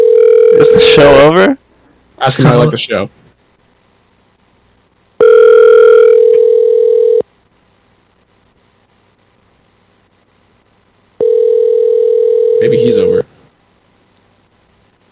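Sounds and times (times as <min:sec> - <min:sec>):
outgoing phone call tone: 0:00.0 - 0:01.0, 0:05.2 - 0:07.2, 0:11.2 - 0:13.2
speech: 0:00.6 - 0:01.6, 0:02.2 - 0:03.2.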